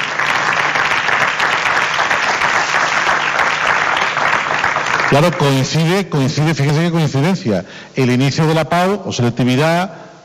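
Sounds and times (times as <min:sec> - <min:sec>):
audience applause: 0:00.0 - 0:05.7
speech: 0:05.1 - 0:10.0.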